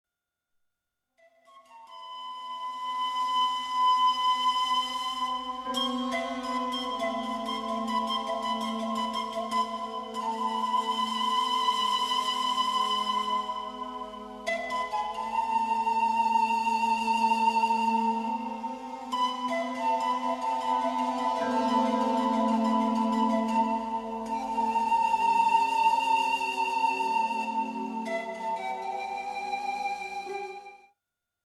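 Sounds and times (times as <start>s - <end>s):
panpipes: 1.3s - 30.8s.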